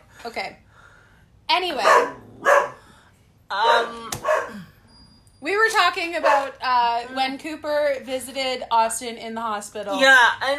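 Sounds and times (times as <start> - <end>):
speech: 0.2 - 0.6, 1.5 - 2.5, 3.5 - 4.6, 5.4 - 10.5
young female puppy barking: 1.8 - 2.8, 3.6 - 4.6, 6.2 - 6.6.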